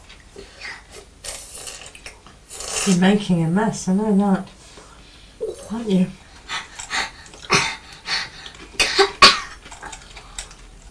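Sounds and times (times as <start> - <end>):
speech: 2.8 - 4.6, 5.7 - 6.2
person coughing in short harsh bursts: 8.8 - 9.6.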